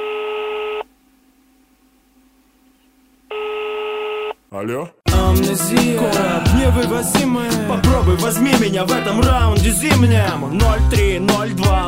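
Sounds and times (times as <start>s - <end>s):
buzzy telephone line tone: 0.0s - 4.4s
speech: 4.5s - 11.8s.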